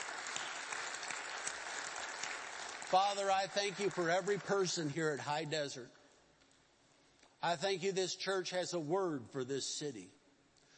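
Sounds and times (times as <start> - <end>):
church audience clapping: 0.0 - 5.2
speech: 2.9 - 6.0, 7.4 - 10.2.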